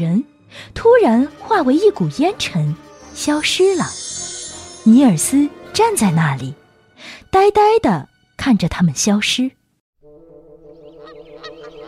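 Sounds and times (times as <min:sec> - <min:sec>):
speech: 0:00.0 - 0:04.0, 0:04.8 - 0:09.6
wild geese honking as they fly down from a church bell tower: 0:10.2 - 0:11.8.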